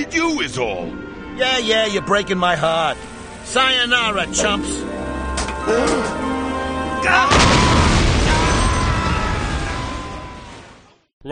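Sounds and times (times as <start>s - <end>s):
speech: 0.0s - 5.0s, 5.6s - 6.3s, 7.0s - 7.6s
bomb explosion destroying a bridge: 7.3s - 10.9s.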